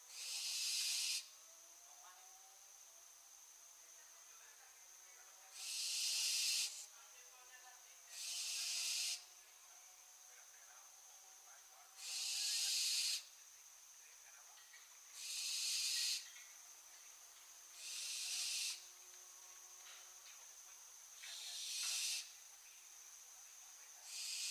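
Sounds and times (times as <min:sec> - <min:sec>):
barn owl Tyto alba screeching: 0:00.1 - 0:01.3, 0:05.6 - 0:06.8, 0:08.1 - 0:09.2, 0:12.0 - 0:13.2, 0:15.2 - 0:16.2, 0:17.8 - 0:18.8, 0:21.3 - 0:22.3, 0:24.1 - 0:24.4.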